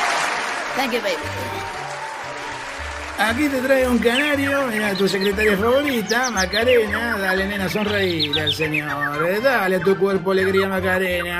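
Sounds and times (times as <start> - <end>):
audience applause: 0.0 - 6.0
speech: 0.8 - 1.9, 3.2 - 11.3.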